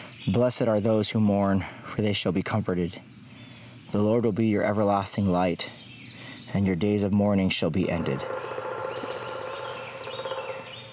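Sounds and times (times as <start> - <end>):
dense outdoor birdsong with high chirps and sweeping tweets: 0.0 - 10.9
speech: 0.2 - 3.1, 3.9 - 5.8, 6.5 - 8.5
woodpecker calling: 5.7 - 10.9.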